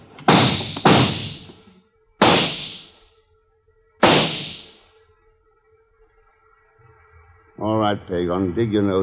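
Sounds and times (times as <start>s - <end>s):
loud gunshots: 0.3s - 1.5s, 2.2s - 2.9s, 4.0s - 4.8s
speech: 7.6s - 9.0s.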